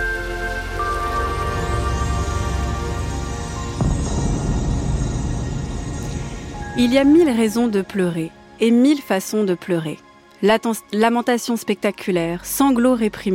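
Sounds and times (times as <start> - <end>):
sustained droning musical tones: 0.0 - 8.9
steady rain hissing: 0.2 - 8.6
speech: 6.8 - 13.3.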